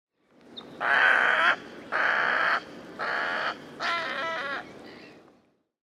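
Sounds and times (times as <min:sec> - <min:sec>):
white-faced heron croaking: 0:00.8 - 0:04.7.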